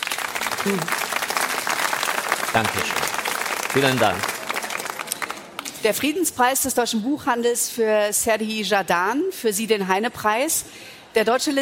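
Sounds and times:
audience applause: 0.0 - 5.6
speech: 0.6 - 1.0, 2.6 - 4.4, 5.8 - 11.6.

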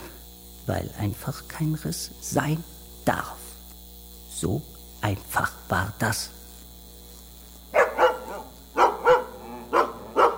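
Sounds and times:
speech: 0.7 - 3.4, 4.4 - 6.4
dog barking: 7.8 - 10.3.

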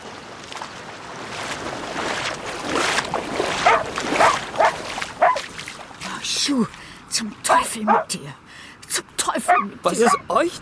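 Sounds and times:
steady rush of water at the beach: 0.0 - 10.6
wind on a beach: 0.0 - 10.6
tiny female dog yapping anxiously in the distance on a beach: 3.6 - 5.5, 7.9 - 8.1, 9.5 - 10.2
speech: 6.6 - 8.4, 9.0 - 10.6.

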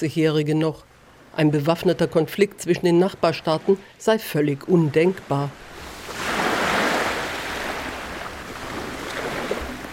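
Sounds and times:
speech: 0.0 - 6.2
gentle shallow Aegean Sea waves washing onto a beach: 5.2 - 9.9.

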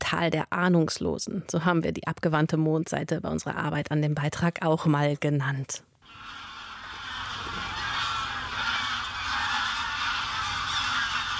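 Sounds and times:
speech: 0.1 - 6.4
greylag geese honking: 6.0 - 11.3.

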